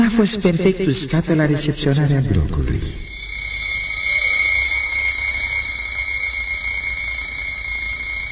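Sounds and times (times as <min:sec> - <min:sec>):
speech: 0:00.2 - 0:03.1
alarm clock ringing in a steady electronic tone: 0:03.0 - 0:08.3.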